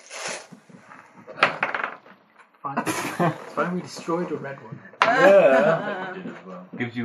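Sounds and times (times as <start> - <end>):
dice including a d30 clattering across a hard tabletop: 1.4 - 2.2
speech: 2.7 - 7.0
laughter: 2.8 - 3.7, 5.0 - 6.5.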